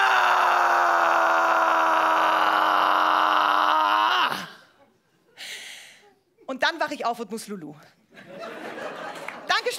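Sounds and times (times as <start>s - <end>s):
performer screaming groan as if in pain: 0.0s - 4.7s
speech: 6.8s - 8.0s
laughter: 8.1s - 9.6s.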